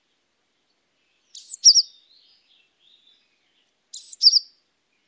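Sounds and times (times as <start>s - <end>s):
great tit calling: 1.3s - 1.9s, 3.9s - 4.5s.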